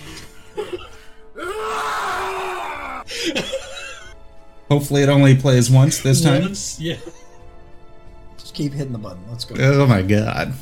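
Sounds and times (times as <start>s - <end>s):
speech: 0.6s - 1.9s, 4.7s - 7.2s, 8.6s - 10.6s
strained shouts: 1.4s - 3.0s
person screaming in rage: 1.4s - 3.1s.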